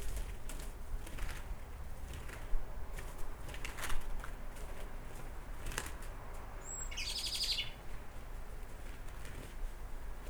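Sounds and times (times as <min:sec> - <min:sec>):
background noise: 0:00.0 - 0:10.2
Eurasian blackbird Turdus merula calling: 0:06.6 - 0:07.8.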